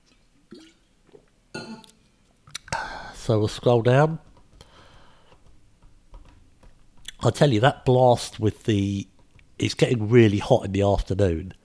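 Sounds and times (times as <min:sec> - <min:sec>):
person sipping water with slurps and gulps: 0:00.1 - 0:03.2
speech: 0:03.2 - 0:04.3, 0:07.2 - 0:11.6.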